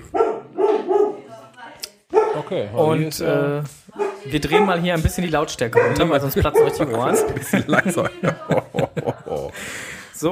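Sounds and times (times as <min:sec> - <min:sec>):
dog barking: 0:00.0 - 0:01.3, 0:02.1 - 0:02.5, 0:04.0 - 0:05.0, 0:05.7 - 0:07.8
speech: 0:02.4 - 0:10.3
laughter: 0:06.2 - 0:10.0.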